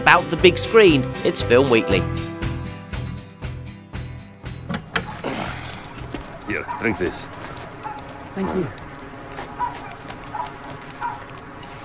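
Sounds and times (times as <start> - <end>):
speech: 0.1 - 2.3, 6.8 - 7.4, 8.4 - 8.8
steady outdoor hum: 4.6 - 11.8
farm dog barking: 6.2 - 8.8, 9.4 - 11.3.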